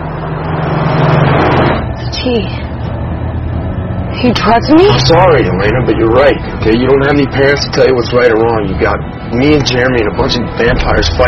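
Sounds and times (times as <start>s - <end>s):
road noise from a truck rolling along: 0.0s - 11.2s
truck engine drone: 0.0s - 11.2s
speech: 2.2s - 2.6s, 4.2s - 11.2s.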